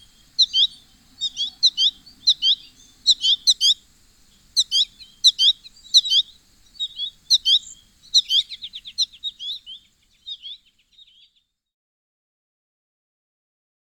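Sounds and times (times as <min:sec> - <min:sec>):
American goldfinch twittering: 0:00.0 - 0:11.3.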